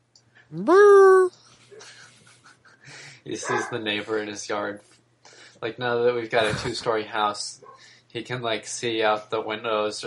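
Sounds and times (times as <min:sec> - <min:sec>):
speech: 0:00.5 - 0:02.0, 0:03.3 - 0:05.0, 0:05.6 - 0:10.0
dog barking at neighbor: 0:03.4 - 0:03.9.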